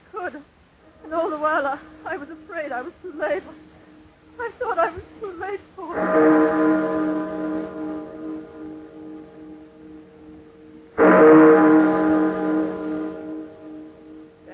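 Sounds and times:
speech: 0.3 - 3.8, 4.4 - 7.2
tower chimes ringing on Christmas Eve: 1.0 - 14.5.

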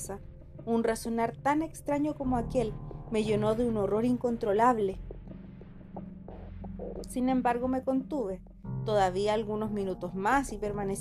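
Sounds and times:
speech: 0.1 - 5.1, 7.0 - 11.0
low heartbeat sound effect: 2.3 - 8.8.

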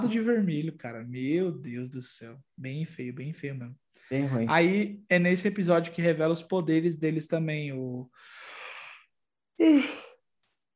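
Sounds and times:
speech: 0.0 - 8.4, 9.6 - 10.1
person yawning: 9.6 - 10.2.

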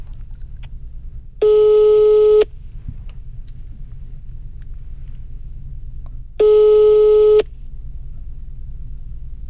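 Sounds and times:
low rumble: 0.0 - 9.4
phone ringback tone: 1.4 - 2.5, 6.4 - 7.4.

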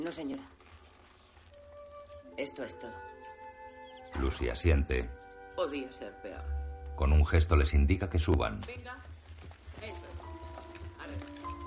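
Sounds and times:
speech: 0.0 - 0.6, 2.4 - 3.2, 4.1 - 9.1, 9.8 - 10.2
cart wheels rumbling low: 0.0 - 2.2, 7.3 - 11.6
horse hooves clip-clopping while pulling a cart: 0.0 - 3.8, 6.8 - 11.6.

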